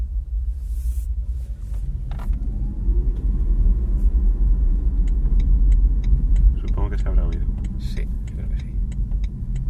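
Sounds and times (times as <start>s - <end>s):
car engine humming while accelerating: 0.0s - 9.6s
small clicks and taps inside the cabin: 4.9s - 9.6s.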